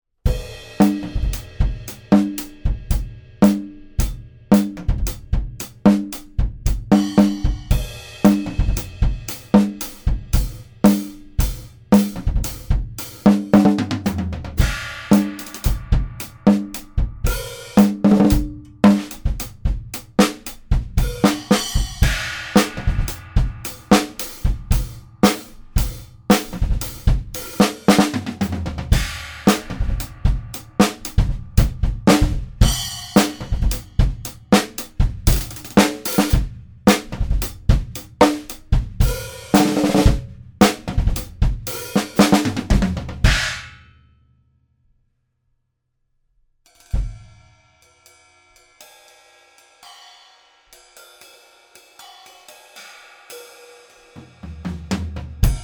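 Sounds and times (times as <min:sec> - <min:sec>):
drum machine drums: 0:00.7 - 0:43.6, 0:54.6 - 0:55.6.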